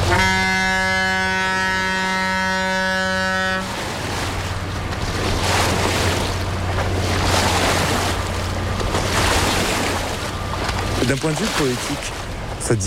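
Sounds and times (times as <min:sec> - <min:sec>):
big waves from a passing river barge splashing: 0:00.0 - 0:12.8
large river barge engine drone: 0:00.0 - 0:12.8
speech: 0:11.2 - 0:12.8.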